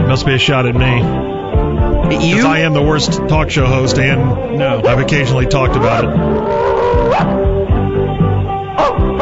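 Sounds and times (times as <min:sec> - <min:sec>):
speech: 0:00.1 - 0:07.5
large stadium crowd barking like dogs: 0:05.8 - 0:07.7, 0:08.7 - 0:09.2.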